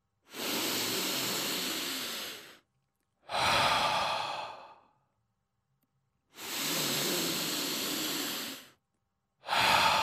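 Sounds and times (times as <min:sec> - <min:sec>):
slow deep breaths in through the nose and out through the mouth: 0:00.2 - 0:02.6, 0:03.2 - 0:05.0, 0:06.3 - 0:08.8, 0:09.4 - 0:10.0.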